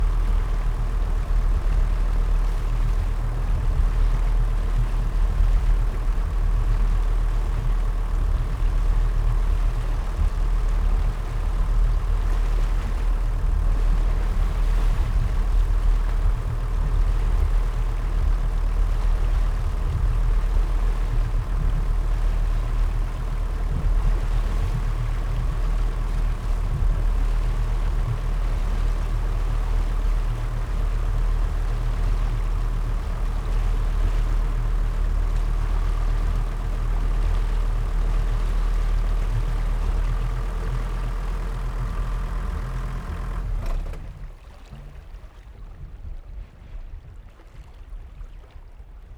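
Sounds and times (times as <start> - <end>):
Arvor 215 boat engine idling in neutral gear then turning off: 0.0 - 49.1.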